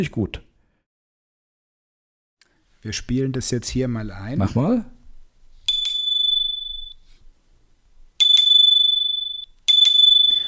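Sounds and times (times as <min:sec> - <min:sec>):
speech: 0:00.0 - 0:00.5, 0:02.8 - 0:05.0
bike computer's electronic bicycle bell ringing: 0:05.7 - 0:07.0, 0:08.2 - 0:10.4.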